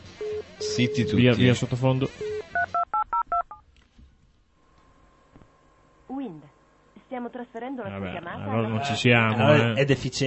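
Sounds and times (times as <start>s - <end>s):
mobile phone keypad dual-tone beeps while dialing a number: 0.2s - 1.2s, 2.2s - 3.6s
speech: 0.4s - 2.2s, 7.6s - 10.2s.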